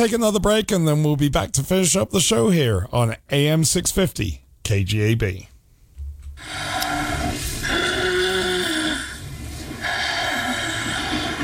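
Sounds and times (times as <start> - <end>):
speech: 0.0 - 5.5
loud rasping rattling snoring: 6.4 - 11.4.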